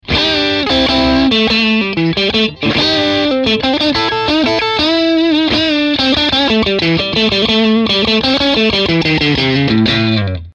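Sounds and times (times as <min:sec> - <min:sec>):
Stratocaster American Pro electric guitar with distortion, mid neck: 0:00.0 - 0:10.5.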